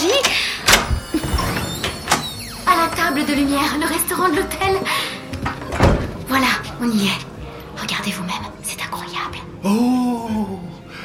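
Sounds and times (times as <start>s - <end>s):
door opening: 0.0s - 6.8s
speech: 3.2s - 5.1s, 6.3s - 7.3s, 9.2s - 10.6s.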